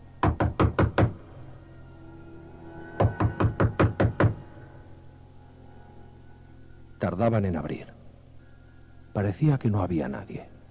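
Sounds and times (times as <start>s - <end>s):
knocking on a door: 0.2s - 1.2s, 3.0s - 4.4s
speech: 7.0s - 8.0s, 9.2s - 10.6s.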